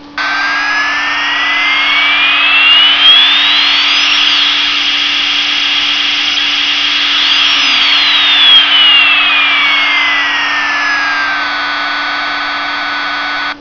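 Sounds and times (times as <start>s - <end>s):
jet engine: 0.0s - 13.5s.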